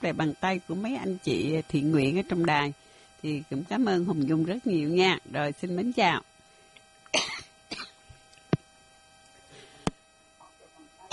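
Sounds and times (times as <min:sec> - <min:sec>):
speech: 0:00.0 - 0:06.3
person coughing after eating fruit: 0:07.2 - 0:08.0.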